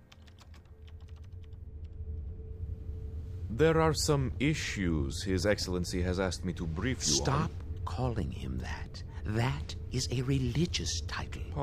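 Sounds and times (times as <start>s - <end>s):
typing an email reply on a computer keyboard: 0.0s - 1.6s
low steady hum of room noise: 0.0s - 11.6s
speech: 3.5s - 11.6s.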